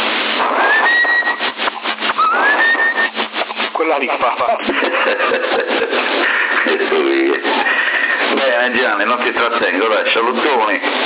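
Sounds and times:
heavy hissing CB radio noise: 0:00.0 - 0:11.0
tune whistled over a CB radio channel: 0:00.5 - 0:01.5, 0:02.1 - 0:03.2
speech: 0:03.9 - 0:10.8
laughter: 0:04.2 - 0:08.2.

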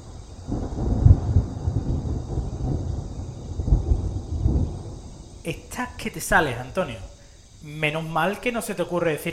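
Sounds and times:
steady hiss: 0:00.0 - 0:09.3
thunder rumbling: 0:00.0 - 0:09.3
speech: 0:05.5 - 0:09.3.

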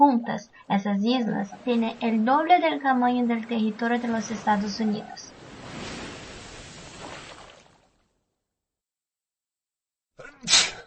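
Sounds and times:
speech: 0:00.0 - 0:05.3
sneeze: 0:10.2 - 0:10.8.

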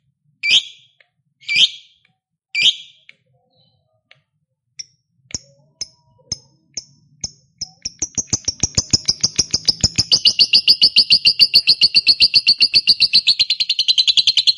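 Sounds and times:
lovebird sharp high chips and rapid chatter: 0:07.2 - 0:14.5
speech: 0:10.8 - 0:13.4.

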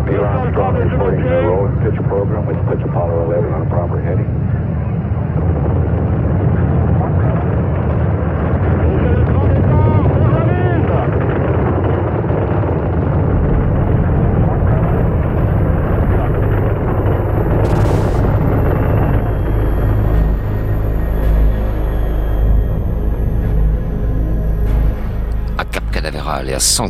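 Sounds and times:
Apollo 11 rocket first-stage engines roaring at lift-off: 0:00.3 - 0:26.8
speech: 0:01.1 - 0:04.7, 0:26.6 - 0:26.8.

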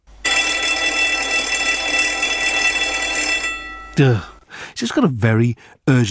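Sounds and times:
old fire alarm bell ringing: 0:00.2 - 0:04.4
speech: 0:04.0 - 0:06.1.

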